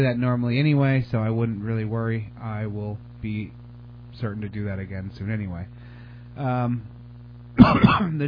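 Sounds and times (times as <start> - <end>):
speech: 0.0 - 3.6, 4.2 - 5.8, 6.4 - 7.0, 7.6 - 8.2
faint steady low hum: 0.0 - 8.2
harsh noisy burst of coughing: 7.6 - 8.2
voiced throat clearing: 7.6 - 8.2.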